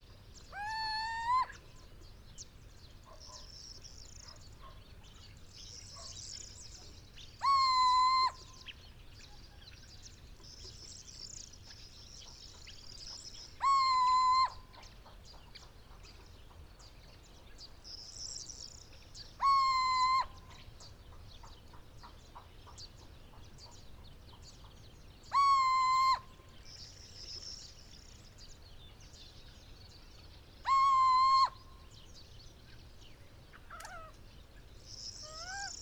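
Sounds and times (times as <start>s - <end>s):
male Cucumiau owl saharae hooting in Morocco: 0.5s - 1.6s, 7.4s - 8.4s, 13.6s - 14.6s, 19.4s - 20.5s, 25.3s - 26.3s, 30.6s - 31.6s, 35.2s - 35.8s.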